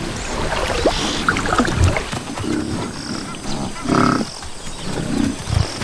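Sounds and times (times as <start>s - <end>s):
African buffalo splashing and churning water in a river: 0.0s - 2.4s
African buffalo herd bellowing and grunting: 1.5s - 5.7s.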